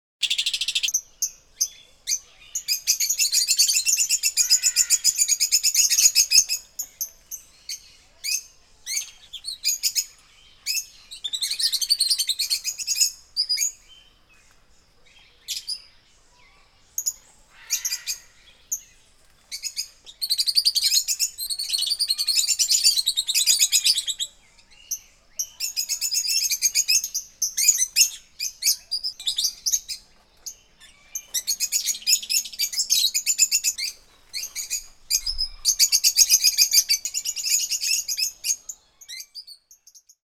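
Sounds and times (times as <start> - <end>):
rainforest birds: 0.2 - 40.2.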